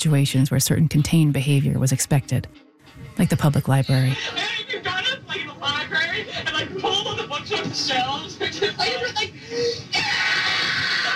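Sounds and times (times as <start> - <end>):
speech: 0.0 - 4.8
laughter: 4.1 - 11.1
girl screaming on an old tape recording: 10.0 - 11.1.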